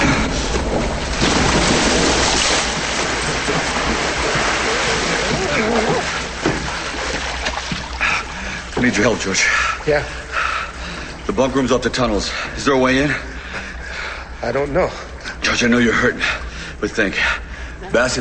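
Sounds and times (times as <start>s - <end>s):
person jumping into water in a tunnel: 0.1s - 8.3s
water sloshing and churning as a person swims: 0.2s - 12.5s
speech: 8.8s - 10.3s, 11.2s - 13.3s, 14.4s - 18.1s.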